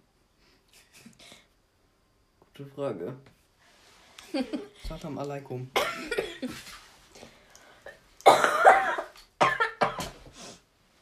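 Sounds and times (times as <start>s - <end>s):
speech: 2.6s - 3.4s, 4.3s - 6.8s
person coughing: 5.8s - 6.5s, 8.2s - 10.3s.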